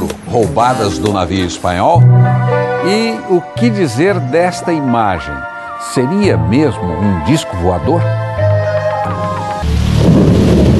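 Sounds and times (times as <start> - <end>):
sustained musical tones: 0.3 - 9.8
speech: 0.4 - 8.3
rain in a thunderstorm on Brazil's only oceanic island: 9.2 - 10.7
thunder rumbling on Brazil's only oceanic island: 9.7 - 10.7.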